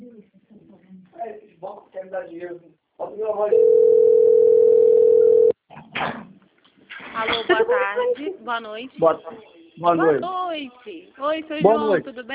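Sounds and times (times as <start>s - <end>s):
speech: 2.1s - 4.4s, 7.2s - 12.3s
telephone ringback tone on an outgoing call: 3.5s - 5.6s.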